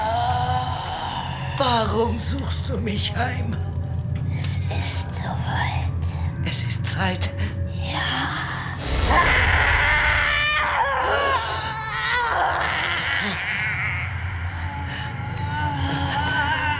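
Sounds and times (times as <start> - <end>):
low rumbling background: 0.0 - 16.7
speech: 1.6 - 3.7, 6.5 - 8.2
loud drawn-out wailing scream: 8.8 - 16.7.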